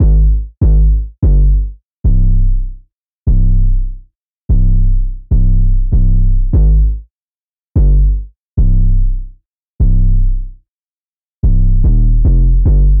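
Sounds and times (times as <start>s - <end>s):
808 drum machine bass in C minor: 0.0s - 2.7s, 3.3s - 3.9s, 4.5s - 7.0s, 7.8s - 9.2s, 9.8s - 10.5s, 11.4s - 12.9s.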